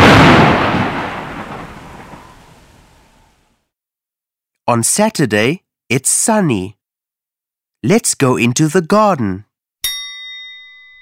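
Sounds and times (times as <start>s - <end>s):
thunder crash rolling into a deep rumble in stormy weather: 0.0s - 3.6s
speech: 4.7s - 6.8s, 7.8s - 9.5s.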